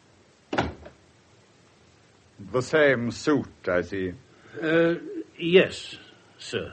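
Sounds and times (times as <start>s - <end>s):
door pushed shut with a solid thud: 0.5s - 1.0s
speech: 2.4s - 6.7s.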